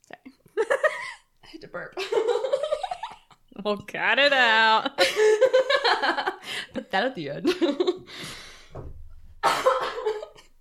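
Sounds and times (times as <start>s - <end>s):
speech: 1.6s - 2.4s, 3.6s - 8.1s
harsh coughs: 9.4s - 10.5s.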